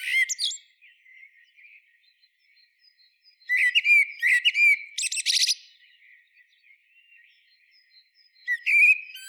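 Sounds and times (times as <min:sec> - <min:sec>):
Common blackbird Turdus merula song with fluty warbled phrases: 0:00.0 - 0:09.2.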